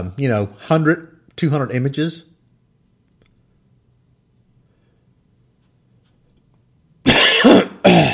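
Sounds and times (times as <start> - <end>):
speech: 0.0 - 2.3
person coughing: 7.0 - 8.1.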